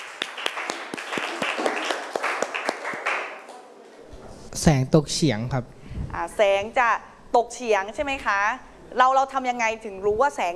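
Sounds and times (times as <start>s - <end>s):
students clapping in a classroom: 0.0s - 3.6s
speech: 4.6s - 10.5s.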